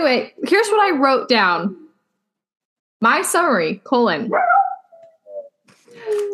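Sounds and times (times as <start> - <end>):
speech: 0.0 - 1.8, 3.0 - 4.6
dog whimpering: 4.3 - 5.6.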